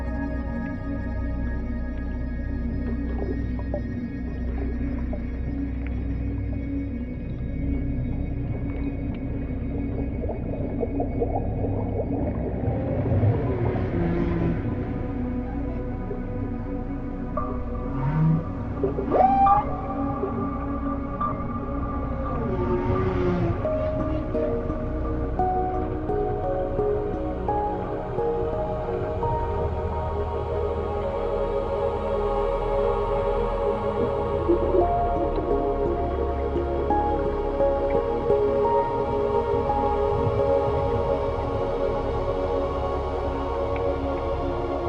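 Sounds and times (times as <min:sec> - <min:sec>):
steady low underwater rumble: 0:00.0 - 0:44.8
rising whistles of whales and dolphins underwater: 0:17.9 - 0:21.5.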